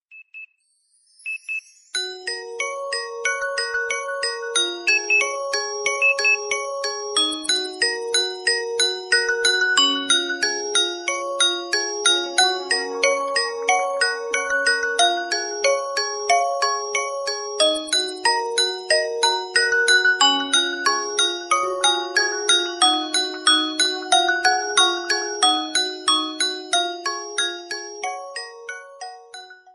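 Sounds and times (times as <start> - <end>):
alarm ringtone: 1.2 - 29.7.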